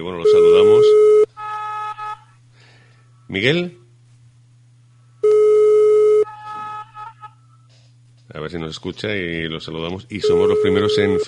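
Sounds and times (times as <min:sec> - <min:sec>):
speech: 0:00.0 - 0:01.0, 0:03.3 - 0:03.8, 0:08.5 - 0:11.2
telephone ringback tone of an outgoing call: 0:05.2 - 0:06.3, 0:10.2 - 0:11.2.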